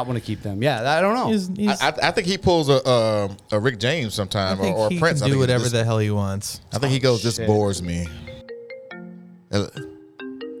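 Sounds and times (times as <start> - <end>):
speech: 0.0 - 8.3, 9.5 - 9.9
phone ringtone with bright chiming electronic notes: 7.1 - 10.5.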